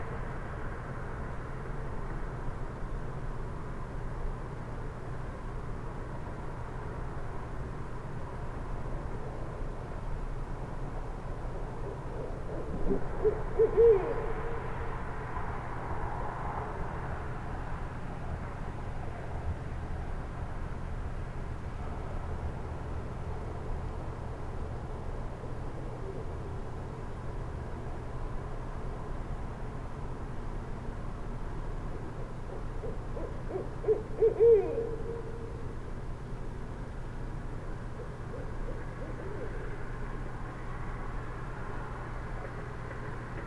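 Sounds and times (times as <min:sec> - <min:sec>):
steady low rumble of traffic: 0:00.0 - 0:43.4
Barred Owl hooting: 0:11.9 - 0:14.8, 0:32.5 - 0:35.6, 0:38.0 - 0:39.8.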